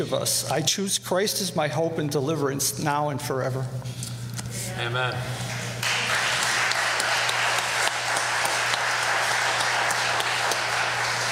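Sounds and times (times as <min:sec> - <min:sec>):
speech: 0:00.0 - 0:04.0, 0:04.8 - 0:05.4
audience applauding: 0:05.6 - 0:11.3.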